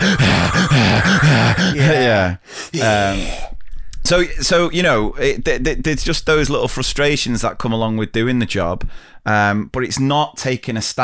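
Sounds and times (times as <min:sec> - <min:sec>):
voice imitating a masked villain's heavy rasping breathing: 0:00.0 - 0:03.6
speech: 0:01.9 - 0:03.5, 0:04.1 - 0:11.0.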